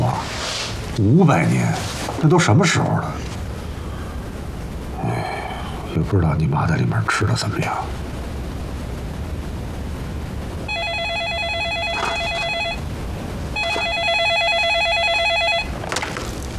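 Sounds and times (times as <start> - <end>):
low hum: 0.0 - 16.5
telephone ringing with rapid electronic trilling: 10.7 - 12.8, 13.5 - 15.9.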